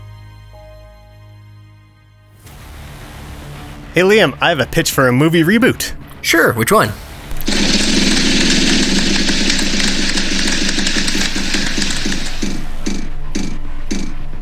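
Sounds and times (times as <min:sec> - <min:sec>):
speech: 0:04.0 - 0:07.0
big wheel spinning with ratcheting clicks: 0:07.4 - 0:14.1.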